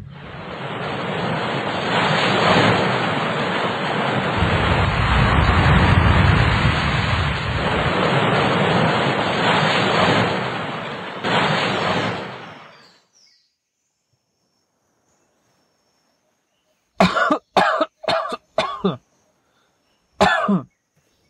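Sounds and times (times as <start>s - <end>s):
rushing wash of water: 0.0s - 12.8s
man coughing up seawater harshly: 17.0s - 19.0s, 20.2s - 20.7s.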